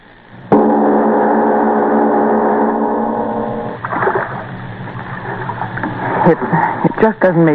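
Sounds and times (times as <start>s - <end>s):
sustained humming tone: 0.0s - 7.5s
oars of a rowing boat splashing in water: 3.8s - 6.9s
speech: 6.3s - 7.5s.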